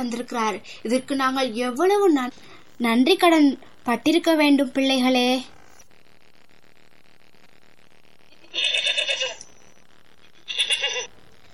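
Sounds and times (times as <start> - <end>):
speech: 0.0 - 5.6
sheep bleating: 8.3 - 9.4.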